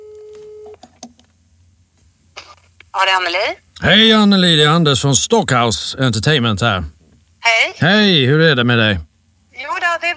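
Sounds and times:
telephone ringback tone while a call is being placed: 0:00.0 - 0:00.8
speech: 0:03.0 - 0:09.1.

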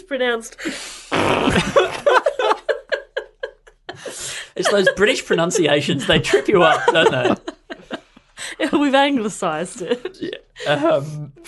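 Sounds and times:
speech: 0:00.1 - 0:02.1, 0:04.6 - 0:07.5, 0:08.8 - 0:11.4
person blowing a raspberry imitating a fart: 0:01.1 - 0:02.0
person laughing: 0:01.4 - 0:08.0.

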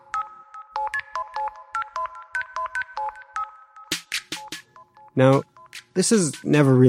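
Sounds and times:
phone electronic ringtone of short bright beeps: 0:00.0 - 0:06.6
speech: 0:05.2 - 0:06.8.

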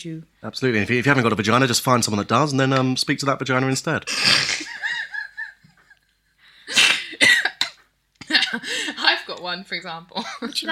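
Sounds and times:
speech: 0:00.0 - 0:04.7, 0:09.5 - 0:10.7
laughter: 0:04.1 - 0:06.9
harsh chesty cough: 0:06.7 - 0:08.6.

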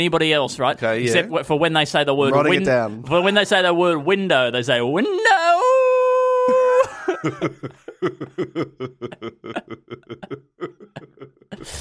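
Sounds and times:
speech: 0:00.0 - 0:05.6, 0:07.2 - 0:11.7
person howling as if at the moon: 0:05.0 - 0:07.2
rhythmic breathy laughter: 0:06.7 - 0:11.7.

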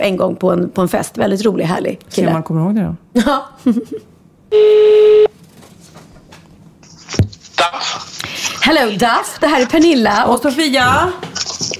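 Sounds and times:
speech: 0:00.0 - 0:05.2, 0:08.7 - 0:11.7
electronic telephone tone as a call is placed: 0:04.5 - 0:05.3.

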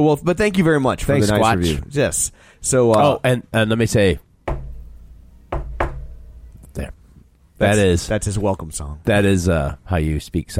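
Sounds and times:
speech: 0:00.0 - 0:04.3, 0:07.6 - 0:10.5
hollow wooden knocks on a tree trunk: 0:04.5 - 0:04.8, 0:05.5 - 0:06.2.

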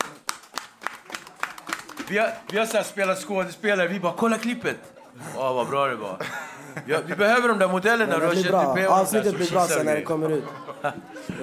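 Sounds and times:
hands clapping: 0:00.0 - 0:03.6
speech: 0:02.1 - 0:11.4
laughter: 0:04.7 - 0:11.4.

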